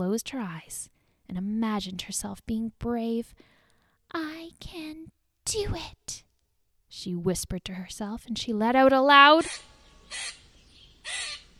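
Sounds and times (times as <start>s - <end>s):
speech: 0.0s - 6.3s, 6.9s - 10.4s
squirrel alarm calls warning of a large bird: 9.4s - 11.5s.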